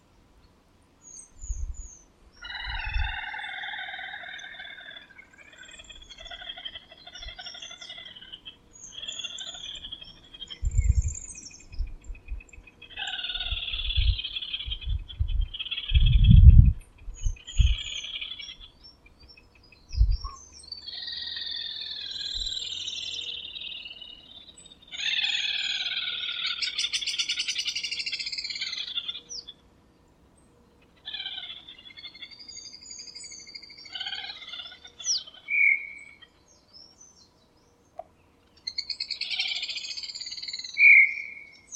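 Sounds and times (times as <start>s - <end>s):
little grebe calling: 2.4s - 11.3s, 12.7s - 18.8s, 20.1s - 29.6s, 30.8s - 36.4s, 38.6s - 41.7s.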